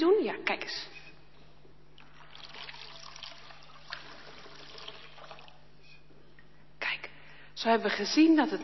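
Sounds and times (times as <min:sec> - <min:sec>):
speech: 0:00.0 - 0:01.0, 0:07.6 - 0:08.6
faint low electrical hum: 0:00.0 - 0:08.6
water poured into a baptismal font: 0:02.0 - 0:05.6.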